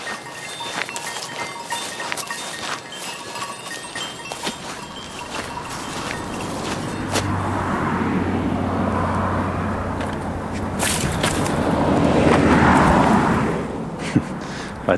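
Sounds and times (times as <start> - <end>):
steady traffic noise: 0.0 - 14.9
second vehicle approaching: 0.3 - 14.9
car passing on road with engine and tire rush: 3.5 - 14.9.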